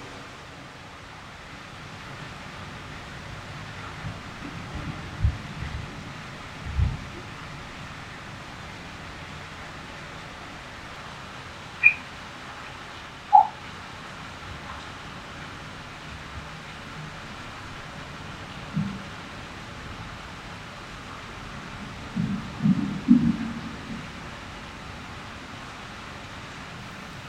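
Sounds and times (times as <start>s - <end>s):
creek flowing through tunnel under highway: 0.0s - 27.2s
bright drip-like pings: 11.8s - 12.0s, 13.3s - 13.6s.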